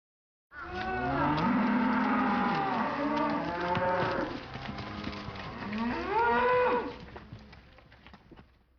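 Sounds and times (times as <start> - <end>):
cow mooing: 0.6 - 7.0.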